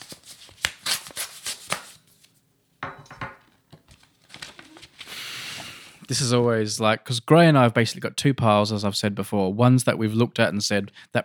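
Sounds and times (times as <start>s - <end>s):
paper envelope being opened: 0.0s - 2.3s, 3.9s - 5.9s
paper crackling: 0.0s - 2.4s, 3.6s - 6.1s
speech: 6.1s - 11.2s.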